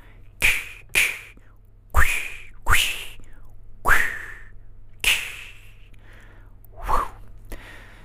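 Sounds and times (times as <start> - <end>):
voice imitating a kendo sword swinging through the air: 0.4 - 1.4, 2.0 - 3.2, 3.9 - 5.8.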